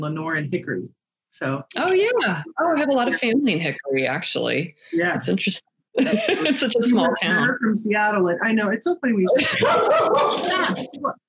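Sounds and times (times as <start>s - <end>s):
speech: 0.0s - 11.2s
laughter: 6.0s - 7.5s, 9.3s - 11.2s
dog barking and yelping: 9.3s - 11.2s.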